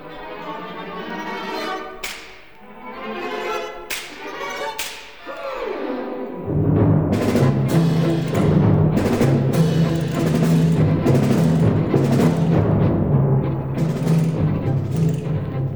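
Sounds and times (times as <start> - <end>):
full orchestra: 0.0 - 15.7
orchestral slapstick whip cracks: 2.0 - 2.6, 3.9 - 5.6.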